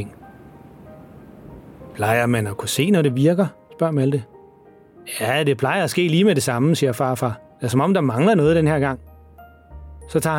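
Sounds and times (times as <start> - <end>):
speech: 0.0 - 0.2, 2.0 - 4.3, 5.0 - 9.1, 10.1 - 10.3
wind blowing outside: 0.0 - 2.6.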